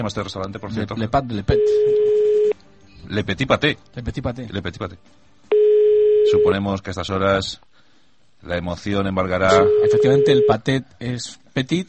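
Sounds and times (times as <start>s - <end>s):
speech: 0.0s - 2.4s, 3.0s - 5.3s, 6.3s - 7.7s, 8.4s - 11.8s
telephone dialing tone calling a restaurant in Brussels: 1.6s - 2.6s, 9.5s - 10.6s.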